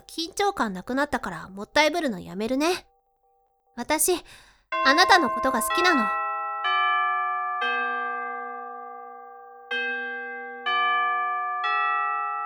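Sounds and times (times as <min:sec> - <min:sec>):
speech: 0:00.1 - 0:02.9, 0:03.8 - 0:06.2
school chime ringing with bright bell-like tones: 0:04.7 - 0:12.4.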